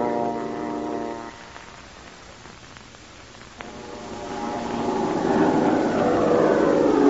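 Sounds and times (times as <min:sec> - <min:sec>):
airplane engine droning in flight: 0:00.0 - 0:01.6, 0:03.6 - 0:07.0.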